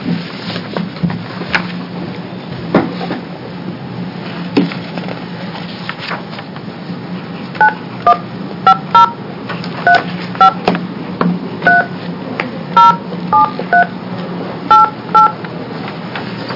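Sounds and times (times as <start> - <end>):
low steady hum: 0.0 - 16.5
phone touch-tone dialing beeps: 7.6 - 9.2, 11.7 - 12.0, 12.8 - 13.9, 14.7 - 15.4.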